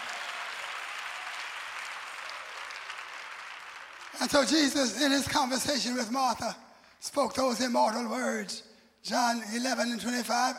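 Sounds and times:
congregation applauding: 0.0s - 4.9s
speech: 4.1s - 10.5s.

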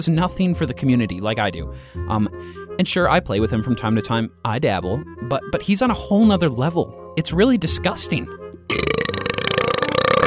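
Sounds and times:
speech: 0.0s - 9.1s
person burping: 8.7s - 10.2s.

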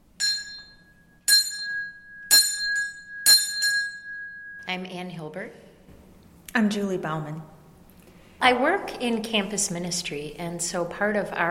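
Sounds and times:
chapel bell ringing to announce Mass: 0.2s - 4.8s
speech: 4.7s - 5.7s, 6.6s - 7.6s, 8.4s - 11.4s.

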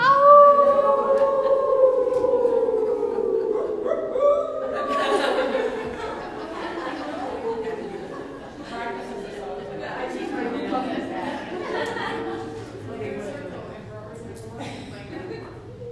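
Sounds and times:
people howling like wolves: 0.0s - 7.0s
laughter: 0.0s - 13.4s, 14.6s - 15.9s
people chattering: 0.0s - 15.9s.

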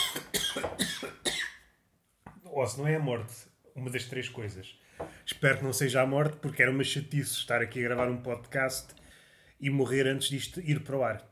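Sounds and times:
person coughing harshly: 0.0s - 1.7s
speech: 2.6s - 9.0s, 9.6s - 11.3s.

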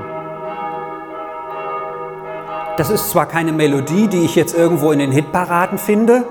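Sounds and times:
church bells pealing: 0.0s - 6.2s
speech: 2.8s - 6.2s.

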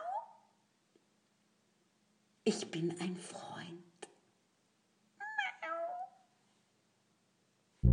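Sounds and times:
speech: 2.4s - 3.9s
cat meowing: 5.2s - 6.3s.

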